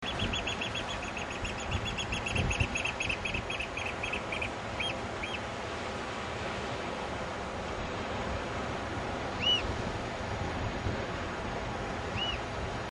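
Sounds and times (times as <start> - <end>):
oystercatcher piping: 0.0 - 5.4
roaring background noise: 0.0 - 12.9.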